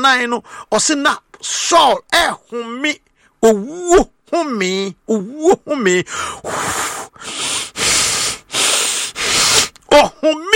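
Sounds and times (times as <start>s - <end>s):
speech: 0.0s - 7.4s, 9.9s - 10.5s
preacher imitating heavy menacing raspy breathing: 6.0s - 9.8s.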